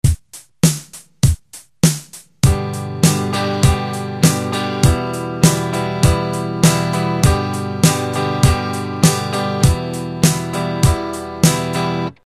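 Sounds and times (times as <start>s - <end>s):
guitar strumming: 2.4s - 12.2s.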